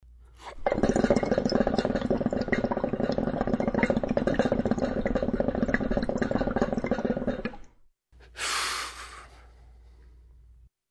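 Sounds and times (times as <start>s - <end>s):
hookah smoking: 0.4s - 7.8s.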